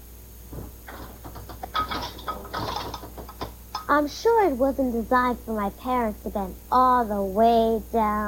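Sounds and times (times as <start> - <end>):
dishwasher door swinging open in a home kitchen: 0.6 - 3.5
dishwasher rack sliding out with rattling clunks and metallic scrapes: 0.9 - 3.5
speech: 3.9 - 8.2.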